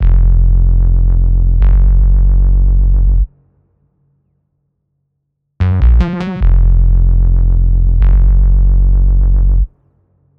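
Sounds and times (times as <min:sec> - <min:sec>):
synth bass trap loop: 0:00.0 - 0:03.3, 0:05.6 - 0:09.7.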